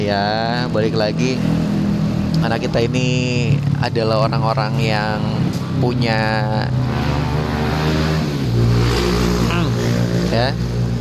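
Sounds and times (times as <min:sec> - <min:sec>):
speech: 0:00.0 - 0:01.8, 0:02.4 - 0:07.1, 0:10.3 - 0:10.8
motorbike engine revving and passing by: 0:05.2 - 0:10.8.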